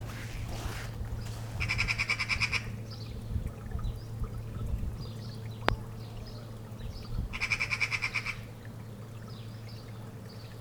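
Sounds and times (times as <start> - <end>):
low background hum: 0.0 - 10.5
Eurasian magpie Pica pica chattering call: 1.6 - 2.7, 7.3 - 8.5.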